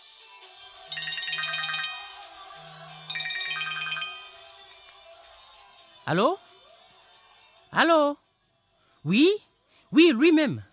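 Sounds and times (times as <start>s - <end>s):
telephone ringing with a warbling electronic ringtone for an incoming call: 0.9s - 4.6s
speech: 6.1s - 6.4s, 7.8s - 8.2s, 9.0s - 10.7s.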